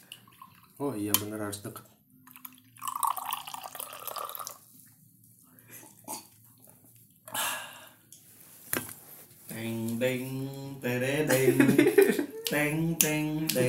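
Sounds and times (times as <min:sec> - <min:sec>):
speech: 0:00.8 - 0:01.9, 0:09.6 - 0:11.9, 0:12.5 - 0:13.6
coffee pouring into a cup: 0:02.2 - 0:04.7
laughter: 0:11.2 - 0:12.8.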